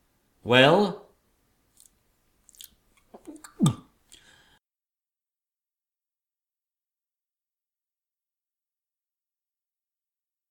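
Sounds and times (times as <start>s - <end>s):
speech: 0.4s - 1.0s
chewing of a soft berry: 1.8s - 3.8s.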